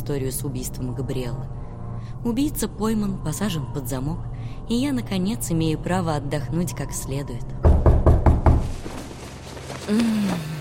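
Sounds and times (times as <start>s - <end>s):
speech: 0.0s - 7.8s, 9.9s - 10.5s
knocking on a door: 7.6s - 8.8s.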